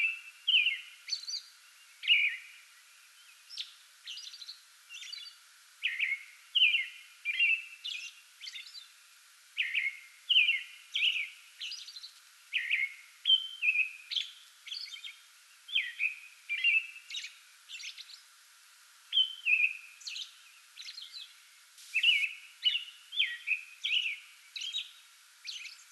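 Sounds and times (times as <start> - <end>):
American robin pre-dawn song bout: 0.0 - 2.6, 3.2 - 8.9, 9.6 - 18.3, 19.1 - 25.9.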